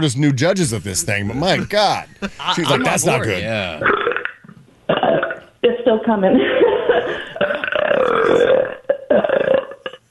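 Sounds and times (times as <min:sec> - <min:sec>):
speech: 0:00.0 - 0:04.0, 0:05.8 - 0:06.6
laughter: 0:01.0 - 0:03.9
woman belching: 0:03.8 - 0:05.8, 0:07.4 - 0:10.0.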